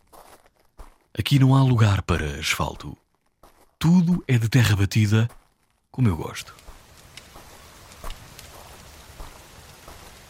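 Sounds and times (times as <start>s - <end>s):
speech: 1.2s - 3.0s, 3.8s - 5.4s, 6.0s - 6.7s
steady rain falling on a village on the largest Galápagos island: 6.0s - 10.2s.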